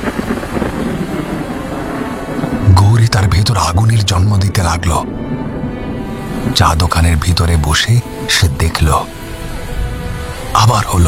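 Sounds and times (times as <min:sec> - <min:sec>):
distant thunder rumbling: 0:00.0 - 0:11.0
speech: 0:03.9 - 0:05.4, 0:06.6 - 0:09.2, 0:10.5 - 0:11.0.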